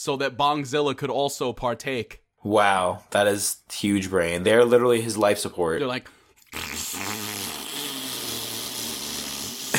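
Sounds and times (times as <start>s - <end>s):
speech: 0.0s - 7.6s
person imitating a deflating balloon fart with their mouth: 6.4s - 9.7s.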